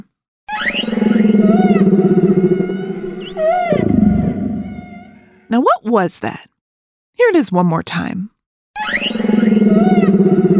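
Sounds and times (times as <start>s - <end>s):
humpback whale song: 0.5s - 5.5s, 8.9s - 10.5s
speech: 5.5s - 6.5s, 7.2s - 8.3s.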